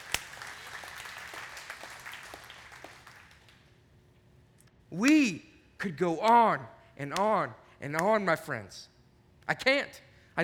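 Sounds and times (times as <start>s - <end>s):
church audience applause: 0.0s - 3.6s
speech: 4.9s - 8.9s, 9.5s - 10.4s.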